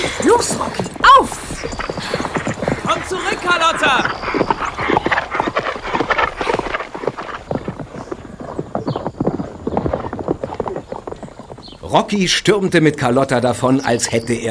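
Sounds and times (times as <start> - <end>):
horse whinnying: 0.0 - 7.6
horse galloping hoofbeats: 0.0 - 13.4
speech: 0.1 - 1.8, 3.0 - 4.5, 11.9 - 14.4.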